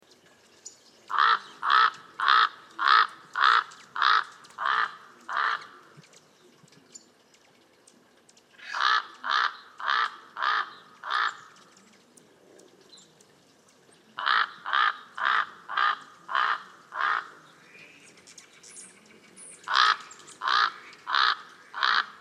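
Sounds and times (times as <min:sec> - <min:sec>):
Northern raven Corvus corax sinuatus: 0:01.1 - 0:06.0, 0:08.6 - 0:11.6, 0:14.2 - 0:18.0, 0:19.5 - 0:22.2.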